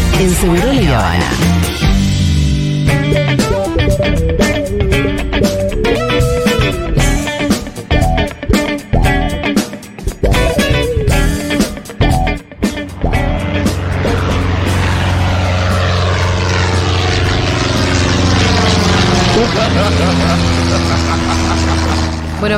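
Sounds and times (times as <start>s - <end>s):
small propeller plane engine droning: 0.0s - 22.5s
speech: 0.2s - 1.8s, 2.9s - 5.0s
laughter: 19.2s - 22.2s.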